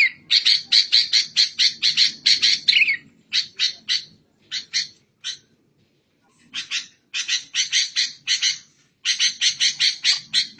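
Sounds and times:
songbird song with harsh chattering and rasping notes: 0.0 - 5.5, 6.5 - 10.5.

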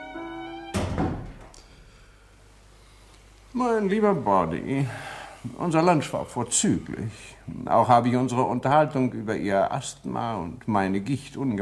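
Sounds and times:
door closing in a restaurant: 0.1 - 1.6
speech: 3.6 - 11.6.

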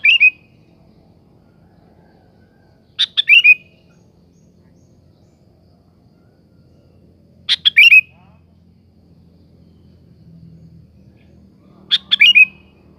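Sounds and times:
sooty-headed bulbul song: 0.0 - 1.2, 2.8 - 5.4, 7.0 - 8.7, 11.2 - 12.9.

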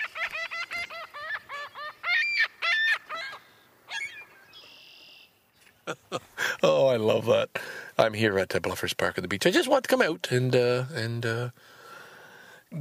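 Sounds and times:
seagulls squawking at a beach: 0.0 - 5.2
speech: 5.9 - 11.8.

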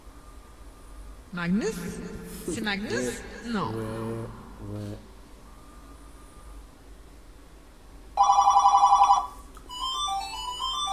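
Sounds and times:
speech: 1.3 - 5.1
mobile phone ringtone: 8.2 - 10.9.

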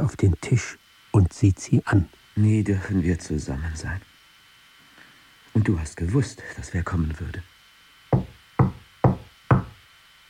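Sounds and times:
speech: 0.0 - 4.1, 5.6 - 7.5
knocking at a door: 8.2 - 9.8.

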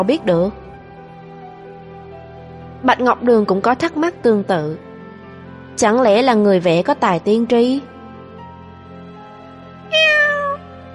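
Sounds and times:
speech: 0.0 - 0.6, 2.8 - 4.9, 5.8 - 7.9
black cat meowing: 9.9 - 10.7.

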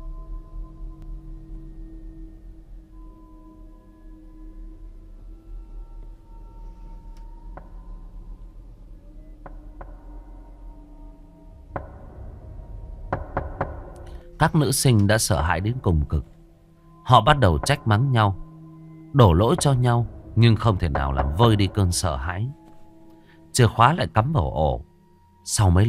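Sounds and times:
knocking on a room door: 13.1 - 14.0
speech: 14.4 - 16.4, 17.1 - 18.4, 19.1 - 22.6, 23.6 - 25.8.

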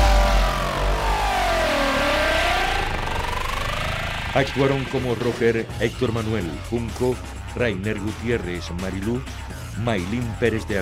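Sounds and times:
car engine revving hard as a stolen car pulls away: 0.0 - 6.4
speech: 4.4 - 10.8.

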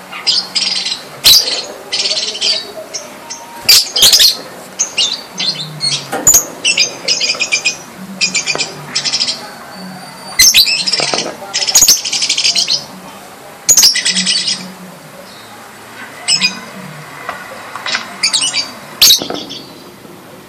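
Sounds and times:
Java sparrow song with sharp high chirps and clicks: 0.0 - 15.6, 16.2 - 16.8, 17.8 - 20.0.

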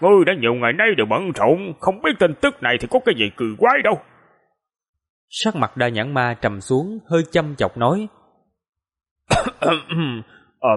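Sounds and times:
speech: 0.0 - 4.1, 5.3 - 8.2, 9.4 - 10.7
narrator voicing a character's light cough: 9.3 - 10.3.

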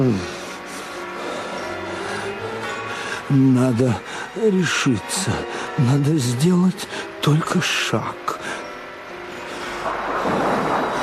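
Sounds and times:
speech: 3.3 - 8.2
thunder from a severe thunderstorm rumbling: 9.8 - 11.0.

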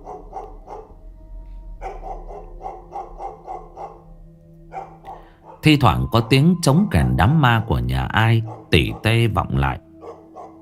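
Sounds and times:
dog barking at night during a flood: 0.0 - 1.0, 1.8 - 4.1, 4.7 - 7.4, 8.3 - 9.2, 10.0 - 10.6
speech: 5.6 - 9.8.

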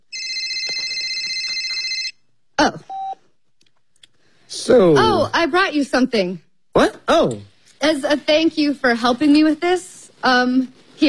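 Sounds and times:
phone ringing: 0.1 - 2.2
speech: 4.7 - 11.0.

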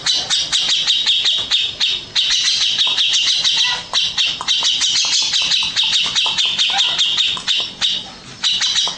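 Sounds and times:
grey-cheeked bulbul harsh chattering song: 0.0 - 8.9.

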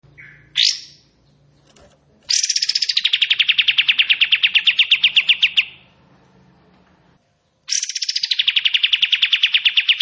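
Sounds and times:
bulbul singing with a fast rattling trill: 0.0 - 6.0, 7.5 - 9.9.

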